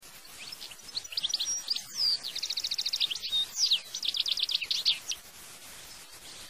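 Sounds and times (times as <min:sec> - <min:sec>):
goldfinch: 0:00.2 - 0:06.4.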